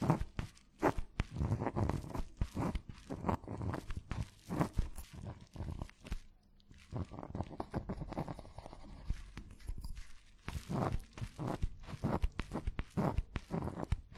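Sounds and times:
pen or pencil scratching and tapping on paper: 0.0s - 14.1s.

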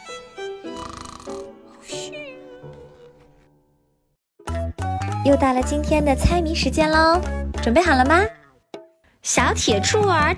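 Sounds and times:
person imitating cartoonish snoring: 0.7s - 2.1s
speech: 5.2s - 8.4s, 9.2s - 10.3s.

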